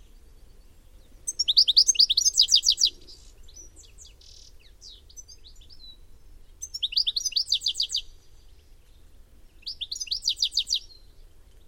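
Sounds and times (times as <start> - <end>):
bird giving a fast run of bright high chirps: 1.3 - 5.9, 6.6 - 8.1, 9.6 - 11.0.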